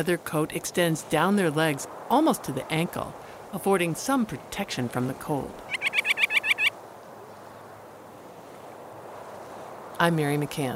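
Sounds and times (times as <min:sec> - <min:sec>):
speech: 0:00.0 - 0:05.7, 0:10.0 - 0:10.7
rock sandpiper calls: 0:05.7 - 0:06.7.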